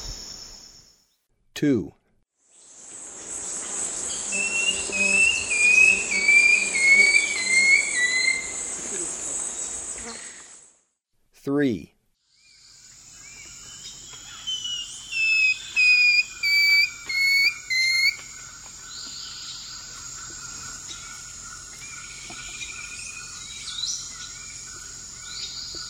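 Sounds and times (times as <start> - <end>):
speech: 1.6 - 2.0, 11.4 - 11.9
steady high insect drone: 2.6 - 10.6, 12.6 - 25.8
long-tailed woodcreeper song of whistled notes in South American eastern lowlands: 4.3 - 8.7, 14.3 - 18.3.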